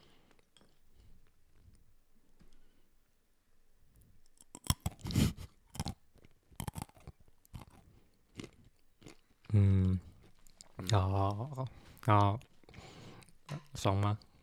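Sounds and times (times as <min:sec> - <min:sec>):
crunchy chewing of almonds during an ASMR recording: 0:04.3 - 0:13.4
speech: 0:10.9 - 0:12.5, 0:13.8 - 0:14.3.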